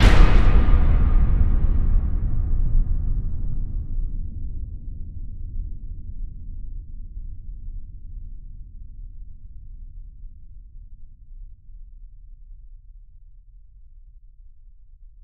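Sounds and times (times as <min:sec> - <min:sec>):
slam sting: 0:00.0 - 0:04.1.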